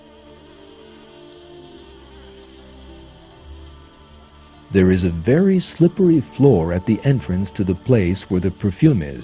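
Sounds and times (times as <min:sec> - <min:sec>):
bees buzzing: 0:00.0 - 0:08.9
speech: 0:04.7 - 0:09.2.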